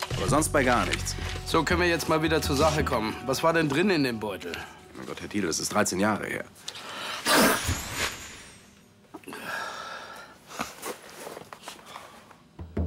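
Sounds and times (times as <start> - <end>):
speech: 0.2 - 7.5
person sneezing: 7.2 - 7.7.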